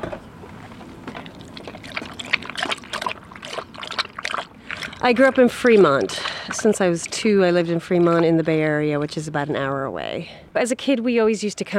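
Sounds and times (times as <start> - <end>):
low rumble: 0.0 - 11.7
water pouring and splashing: 0.8 - 9.8
speech: 5.0 - 11.7.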